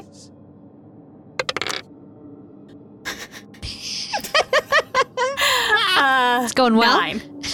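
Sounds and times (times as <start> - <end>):
dice clattering across a hard tabletop: 1.4 - 1.8
people laughing: 3.1 - 6.2
speech: 6.5 - 7.3.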